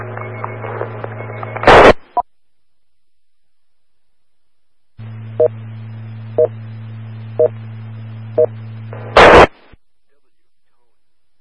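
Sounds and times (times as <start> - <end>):
sharp burst of radio static: 0.0 - 2.2, 5.0 - 11.0
steady droning radio net alert tone: 0.0 - 11.3.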